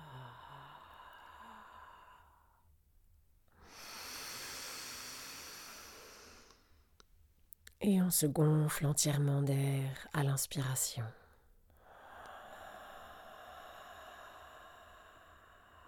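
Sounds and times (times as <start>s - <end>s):
slow deep exhale in a long breathy rush: 0.0s - 2.6s, 3.6s - 6.9s, 11.8s - 15.8s
speech: 7.8s - 11.2s.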